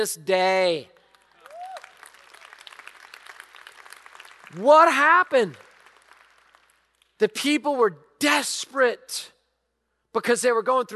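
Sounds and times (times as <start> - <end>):
speech: 0.0 - 1.0, 4.5 - 5.6, 7.2 - 9.4, 10.1 - 10.9
audience clapping and cheering: 0.6 - 7.2
short rising whoop or whistle: 1.5 - 2.0.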